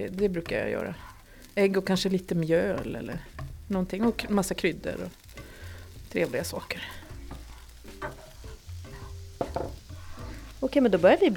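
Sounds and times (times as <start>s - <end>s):
speech: 0.0s - 5.2s, 6.1s - 7.0s, 10.7s - 11.3s
plant-based meat products sizzling in a frying pan: 0.0s - 11.3s.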